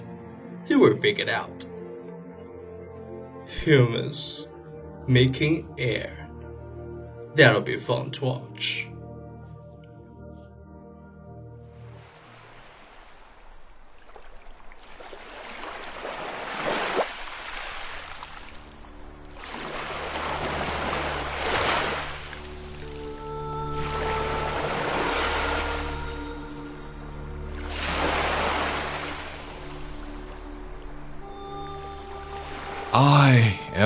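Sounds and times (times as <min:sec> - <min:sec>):
sustained musical tones humming: 0:00.0 - 0:12.4, 0:18.3 - 0:33.8
speech: 0:00.7 - 0:01.7, 0:03.5 - 0:04.5, 0:05.1 - 0:06.3, 0:07.4 - 0:08.9
ocean surf crashing: 0:11.9 - 0:23.0, 0:23.7 - 0:26.8, 0:27.4 - 0:31.2.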